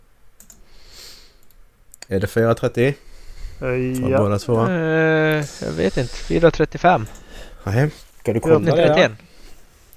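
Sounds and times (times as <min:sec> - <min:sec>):
faint mouse clicks on a shared link: 0:00.4 - 0:00.7
soft hiss: 0:00.4 - 0:09.9
speech: 0:02.1 - 0:09.3.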